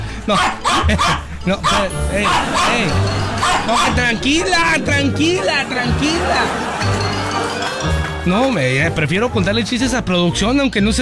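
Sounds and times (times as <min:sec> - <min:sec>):
person imitating an angry chihuahua barking: 0:00.0 - 0:05.6
laughter: 0:00.0 - 0:10.7
speech: 0:00.2 - 0:07.0, 0:07.8 - 0:11.0.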